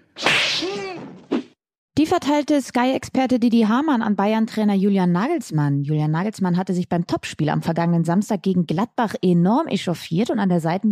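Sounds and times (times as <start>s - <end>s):
slap sound effect with airy swish: 0.2s - 1.6s
speech: 0.6s - 1.2s, 2.1s - 10.8s.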